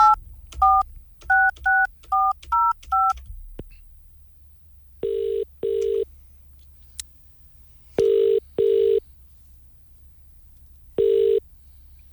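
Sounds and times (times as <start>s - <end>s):
telephone ringing tone in paired double bursts: 0.0s - 2.3s, 5.0s - 6.0s, 8.0s - 9.0s, 11.0s - 11.4s
telephone keypad tones dialing a random number: 0.0s - 3.2s, 5.0s - 6.0s, 8.0s - 9.0s, 11.0s - 11.4s.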